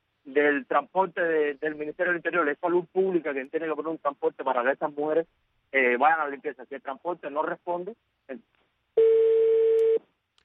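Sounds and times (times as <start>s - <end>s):
speech: 0.3s - 9.4s
steady mid-pitched telephone tone after a dropped phone call: 9.0s - 10.0s.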